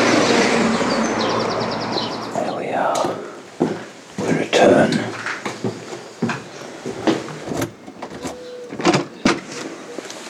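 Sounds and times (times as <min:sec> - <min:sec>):
car passing by: 0:00.0 - 0:03.4
birds chirping: 0:00.0 - 0:10.1.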